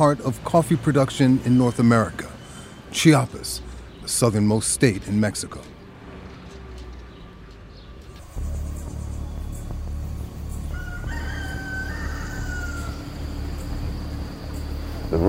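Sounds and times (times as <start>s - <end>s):
speech: 0.0s - 2.3s, 2.9s - 5.7s
constant high insect drone in the early-morning air: 0.0s - 5.9s, 8.1s - 15.2s
roosters crowing before sunrise: 0.0s - 15.2s
steady low rumble: 8.1s - 15.2s.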